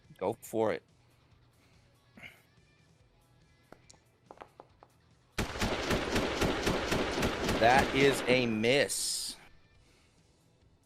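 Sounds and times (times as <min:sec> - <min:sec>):
speech: 0:00.2 - 0:00.9, 0:07.6 - 0:09.3
AR rifle gunshot effect: 0:05.4 - 0:08.6.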